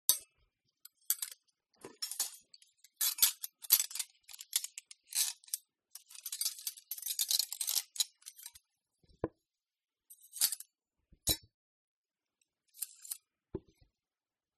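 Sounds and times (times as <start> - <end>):
cutlery being set and handled on a table: 0.1 - 0.3, 0.9 - 8.6, 10.1 - 10.7, 12.8 - 13.7.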